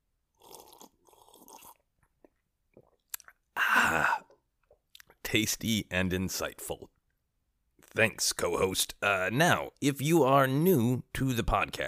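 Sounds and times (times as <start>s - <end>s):
quiet slurping sip of whiskey: 0.3s - 4.8s
swallow: 0.4s - 5.2s
speech: 5.3s - 7.0s, 8.0s - 11.8s.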